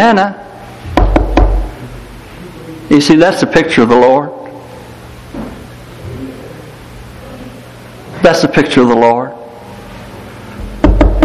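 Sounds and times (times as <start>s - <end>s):
speech: 0.0s - 0.5s, 2.9s - 4.4s, 8.2s - 9.4s
quick solid knocks on a wooden door: 0.9s - 1.7s, 10.6s - 11.2s.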